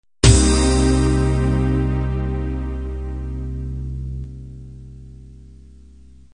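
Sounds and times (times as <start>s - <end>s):
8-bit analog synth ending: 0.2s - 5.7s.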